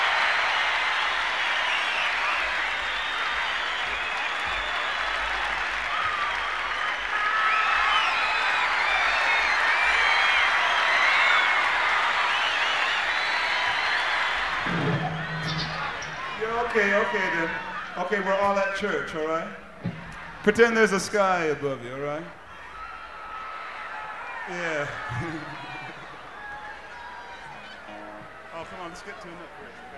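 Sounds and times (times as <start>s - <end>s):
concert audience applauding and cheering at a rock show: 0.0s - 29.9s
speech: 16.7s - 19.6s, 20.4s - 22.4s, 24.5s - 25.6s, 28.9s - 29.9s.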